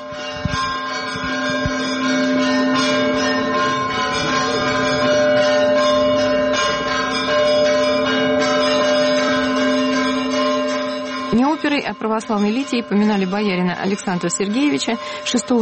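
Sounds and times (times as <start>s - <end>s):
monastery bells pealing in Russia: 0.0s - 15.5s
speech: 11.8s - 15.5s.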